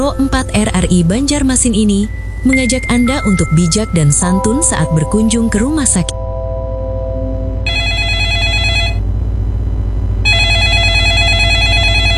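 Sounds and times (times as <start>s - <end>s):
steady low hum: 0.0s - 12.1s
speech: 0.1s - 6.2s
telephone ringing: 2.1s - 9.0s, 10.3s - 12.1s.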